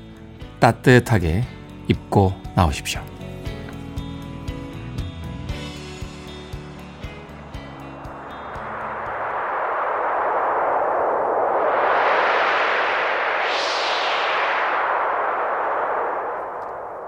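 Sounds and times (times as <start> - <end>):
music: 0.0 - 9.4
speech: 0.6 - 3.1
cold winter wind howling: 6.3 - 17.0.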